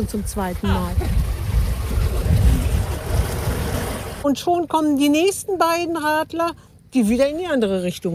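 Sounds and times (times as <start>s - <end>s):
speech: 0.0s - 1.2s, 4.2s - 8.1s
water and wind wash from a solar-powered ferry crossing a river: 0.0s - 8.1s.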